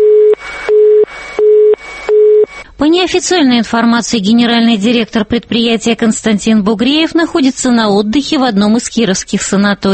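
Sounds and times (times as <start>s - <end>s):
telephone busy tone of a disconnected line: 0.0s - 2.6s
speech: 2.8s - 9.9s.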